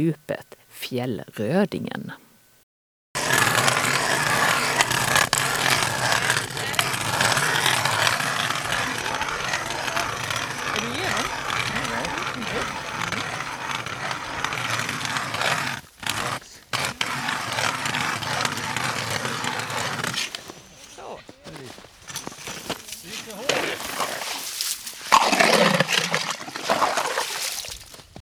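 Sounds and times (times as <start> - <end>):
speech: 0.0 - 2.2
auger boring through thick lake ice: 3.2 - 28.1
water sloshing and splashing up through an ice hole: 24.2 - 28.1.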